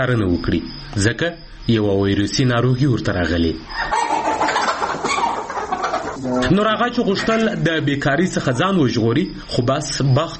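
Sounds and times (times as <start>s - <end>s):
speech: 0.0s - 4.0s, 6.2s - 10.3s
flock of sick chickens clucking on a small family poultry farm: 3.3s - 8.8s.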